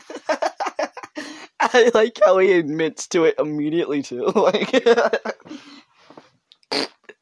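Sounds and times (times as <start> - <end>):
laughter: 0.0 - 1.8, 4.3 - 5.4
speech: 1.7 - 5.7
person imitating a fart with sputtering mouth noises: 6.7 - 7.2.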